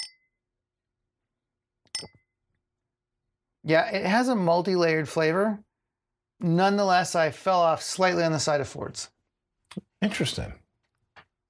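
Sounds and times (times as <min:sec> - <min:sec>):
drinking glass clinking as it is picked up during a gin tasting: 0:02.0 - 0:02.2
speech: 0:03.7 - 0:05.7, 0:06.4 - 0:09.1, 0:10.0 - 0:10.6.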